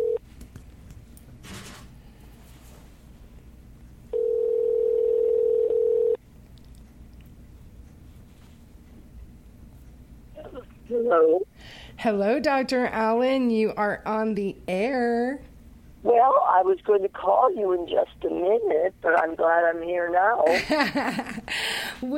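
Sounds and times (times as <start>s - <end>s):
telephone dial tone as a call is placed to a doctor: 0.0s - 0.2s, 4.1s - 6.2s
quiet noise: 0.0s - 22.1s
speech: 11.1s - 22.1s.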